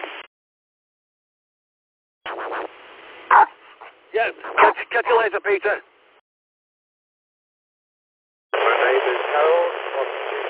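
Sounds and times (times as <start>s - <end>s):
hiss of radio static: 0.0s - 0.3s, 2.2s - 5.8s, 8.6s - 10.4s
dog barking through a thin band-limited radio channel: 3.3s - 5.3s
speech: 4.2s - 5.9s.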